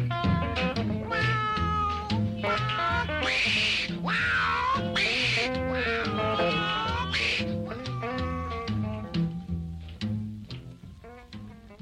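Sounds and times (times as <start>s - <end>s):
steady rhythmic bass-driven music backing: 0.0s - 11.8s
cat-like meows and drawn-out wailing glides: 1.1s - 10.0s.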